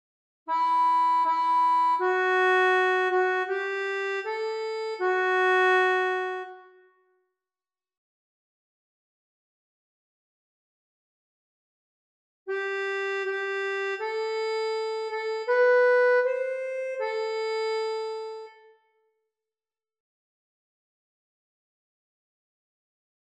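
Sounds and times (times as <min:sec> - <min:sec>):
accordion: 0:00.5 - 0:06.8, 0:12.5 - 0:19.0.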